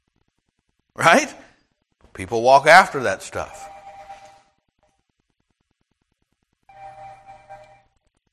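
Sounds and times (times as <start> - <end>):
speech: 1.0 - 1.4, 2.2 - 3.7
phone ringing with a bright electronic chiming ringtone: 3.4 - 4.5, 6.7 - 7.9.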